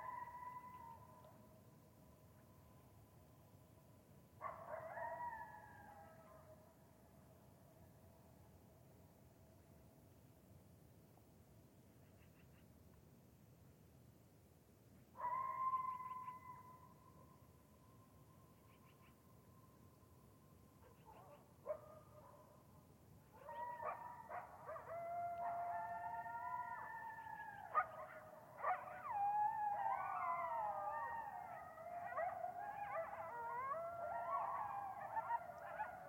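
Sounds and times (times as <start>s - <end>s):
coyotes howling: 0.0s - 1.3s, 4.5s - 6.3s, 15.2s - 17.0s, 23.3s - 36.0s
coyotes yipping: 0.0s - 1.3s, 15.2s - 16.9s, 20.8s - 22.4s, 23.3s - 36.0s.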